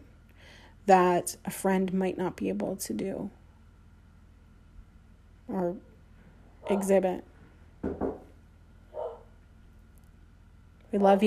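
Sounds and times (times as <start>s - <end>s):
speech: 0.9s - 3.4s, 5.5s - 5.9s, 6.7s - 8.1s, 10.9s - 11.2s
dog barking: 8.9s - 9.4s.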